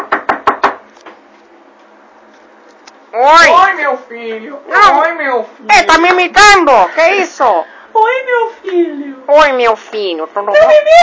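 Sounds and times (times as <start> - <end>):
knocking on a door: 0.0 - 0.8
speech: 3.1 - 11.0.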